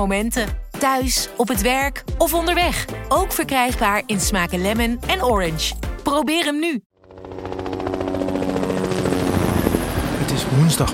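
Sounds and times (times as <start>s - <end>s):
speech: 0.0s - 6.9s, 10.5s - 10.9s
trauma helicopter rotor blades thumping while taking off from a hospital in Amsterdam: 7.0s - 10.9s.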